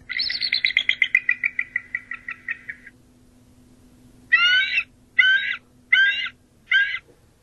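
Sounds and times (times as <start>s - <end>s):
bald eagle calling with chittering notes and squealing cries: 0.0s - 3.0s, 4.3s - 7.1s.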